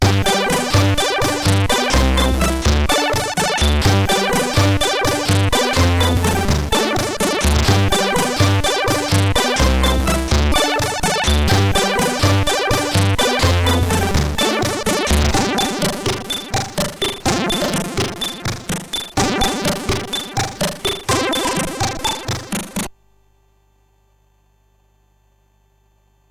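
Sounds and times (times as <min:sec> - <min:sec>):
SID 8580R5 sound chip music: 0:00.0 - 0:22.9.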